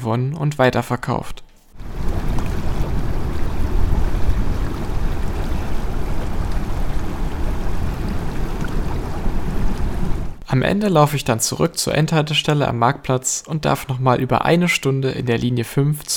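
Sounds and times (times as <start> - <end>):
speech: 0.0 - 1.4, 10.5 - 16.1
gusty wind buffeting the microphone: 1.8 - 10.4
rushing water of the Saale river at Bad Dürrenberg, Germany: 1.8 - 10.4.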